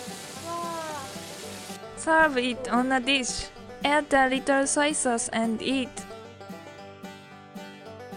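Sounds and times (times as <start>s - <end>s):
hot water and boiled kiku petals pouring into a colander: 0.0s - 1.8s
speech: 2.0s - 6.0s.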